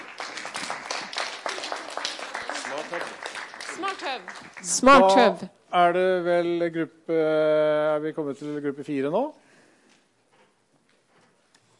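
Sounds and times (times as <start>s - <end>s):
crowd applauding: 0.0s - 5.2s
speech: 3.9s - 9.4s.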